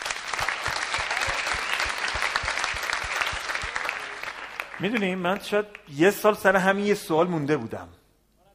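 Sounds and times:
audience applause: 0.0 - 5.9
speech: 4.8 - 8.0.

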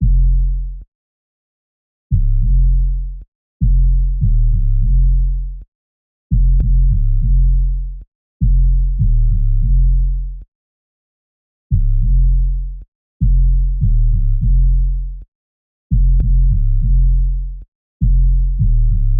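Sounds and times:
bass loop in F minor: 0.0 - 0.8, 2.1 - 5.6, 6.3 - 10.4, 11.7 - 15.2, 15.9 - 19.1.

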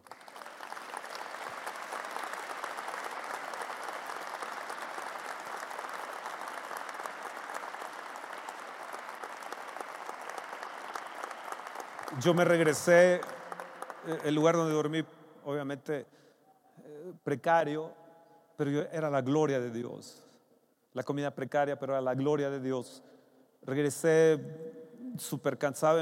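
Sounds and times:
large crowd clapping loudly: 0.0 - 15.0
speech: 12.1 - 13.4, 14.0 - 16.2, 17.2 - 18.0, 18.6 - 20.2, 21.0 - 25.9.

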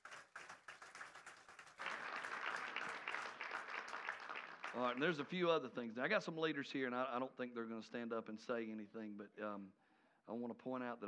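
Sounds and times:
crowd applauding: 0.0 - 5.4
speech: 4.7 - 11.0.

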